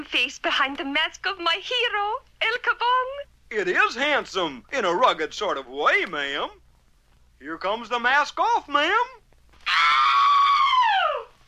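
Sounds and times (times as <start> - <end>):
speech: 0.0 - 6.6, 7.4 - 9.9
woman screaming: 9.6 - 11.4.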